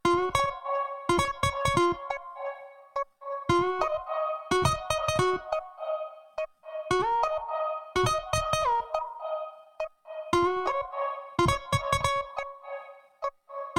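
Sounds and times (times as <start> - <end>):
303 synth melody at 140 bpm: 0.2 - 12.9.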